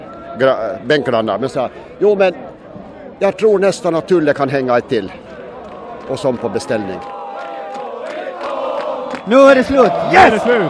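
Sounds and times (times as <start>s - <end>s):
speech: 0.4s - 2.5s, 3.2s - 5.3s, 6.1s - 7.2s, 9.3s - 10.6s
large crowd of football supporters roaring and cheering: 5.2s - 10.6s
individual football supporters shouting and yelling: 7.1s - 10.6s.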